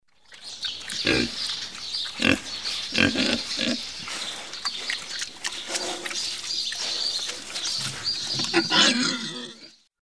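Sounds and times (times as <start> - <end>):
domestic pig grunt-squeal: 1.0 - 1.4, 2.2 - 5.0, 5.6 - 9.9.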